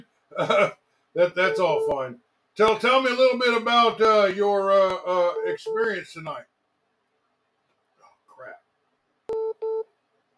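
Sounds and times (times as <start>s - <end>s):
speech: 0.4s - 6.5s
electronic telephone tones reconnecting a call: 1.4s - 2.1s, 9.3s - 9.9s.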